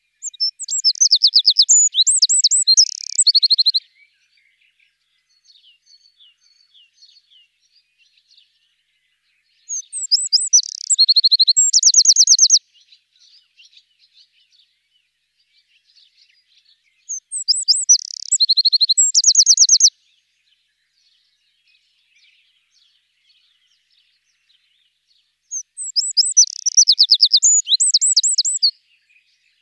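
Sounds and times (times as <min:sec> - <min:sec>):
Eurasian wren singing: 0:00.2 - 0:03.8, 0:09.6 - 0:12.6, 0:17.0 - 0:19.9, 0:25.5 - 0:28.8.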